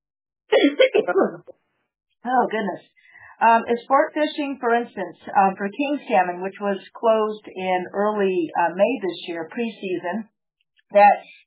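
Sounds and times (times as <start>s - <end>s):
person coughing from an irritated throat: 0.5s - 1.4s
speech: 1.1s - 1.6s, 2.2s - 10.3s, 10.9s - 11.4s.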